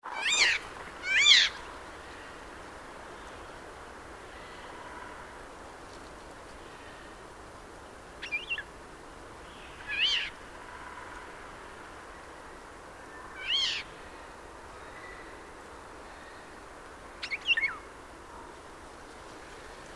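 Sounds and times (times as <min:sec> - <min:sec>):
faint steady hiss: 0:00.0 - 0:19.9
Eurasian jay mewing calls: 0:00.1 - 0:01.6.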